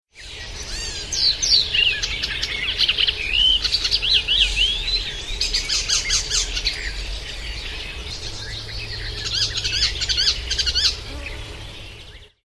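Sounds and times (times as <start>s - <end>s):
icterine warbler singing: 0.1s - 12.4s.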